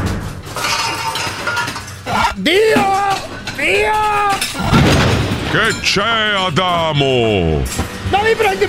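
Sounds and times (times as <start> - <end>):
pots and pans clanking: 0.0 - 6.0
person crying out: 2.0 - 4.8
speech: 2.4 - 3.0, 5.5 - 8.6.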